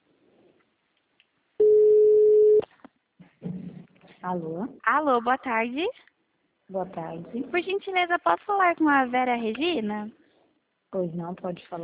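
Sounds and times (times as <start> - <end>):
ringback tone of an outgoing telephone call: 1.6 - 2.6
speech: 4.2 - 6.1, 6.7 - 10.2, 10.9 - 11.8.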